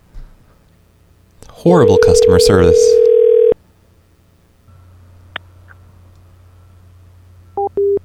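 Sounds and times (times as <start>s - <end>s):
faint phone line hum: 0.1s - 8.0s
speech: 1.6s - 3.1s
short phone line tone: 1.8s - 3.6s.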